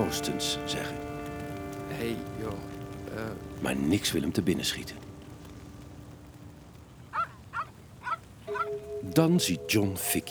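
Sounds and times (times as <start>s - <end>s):
low murmur: 0.0s - 9.9s
speech: 0.1s - 0.7s, 2.0s - 5.1s, 9.2s - 10.2s
dog barking: 7.1s - 8.8s.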